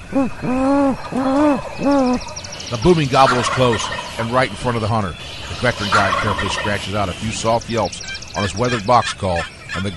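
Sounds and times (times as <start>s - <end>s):
man imitating a great horned owl during a turkey hunt on a ridge: 0.0s - 2.4s
speech: 0.1s - 9.9s.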